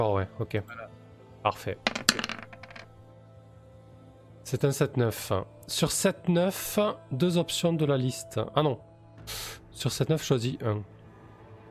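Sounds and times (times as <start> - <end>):
speech: 0.0 - 2.0, 4.4 - 11.0
two six-sided dice rolling across a hard surface: 1.9 - 3.0.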